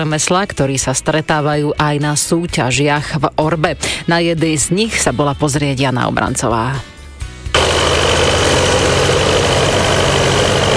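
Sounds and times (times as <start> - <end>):
speech: 0.0 - 6.9
tractor engine running at a ploughing championship in Maňa, Nové Zámky district: 7.6 - 10.7.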